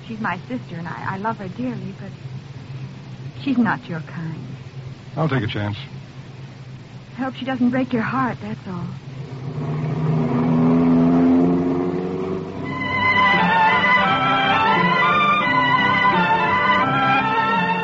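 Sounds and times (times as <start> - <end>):
speech: 0.1 - 2.5, 3.4 - 4.6, 5.2 - 6.0, 7.2 - 9.9
car engine idling and revving: 9.0 - 17.8.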